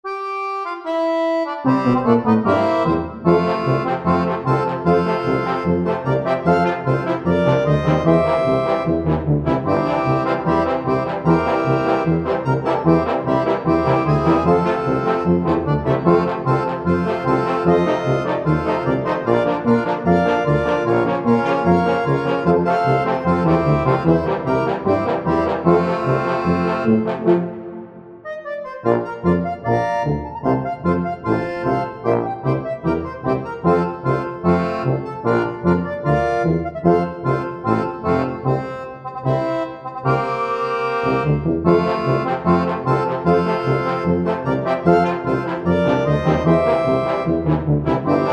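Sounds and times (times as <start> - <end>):
German Bavarian brass and accordion song: 0.0 - 48.3.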